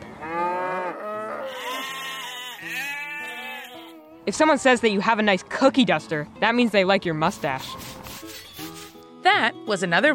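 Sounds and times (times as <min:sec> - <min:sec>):
herd of cattle mooing: 0:00.0 - 0:04.2
herd of sheep bleating: 0:00.9 - 0:04.2
speech: 0:04.3 - 0:08.0, 0:09.2 - 0:10.1.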